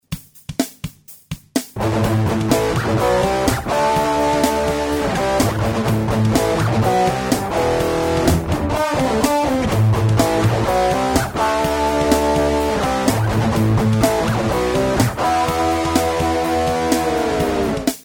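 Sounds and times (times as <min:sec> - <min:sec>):
distorted guitar riff: 0:01.8 - 0:18.0.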